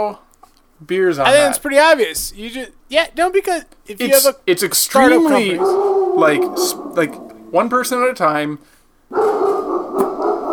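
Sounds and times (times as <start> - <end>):
speech: 0.0 - 0.2, 0.8 - 9.6
dog howling bark: 5.6 - 6.3, 9.1 - 10.5.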